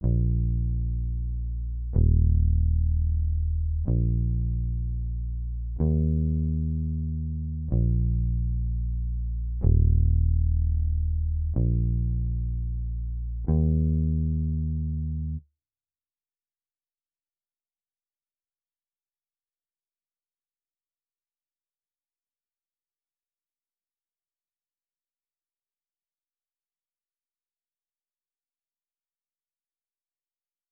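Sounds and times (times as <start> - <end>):
125 BPM A# minor trap bass loop stem: 0.0 - 15.4.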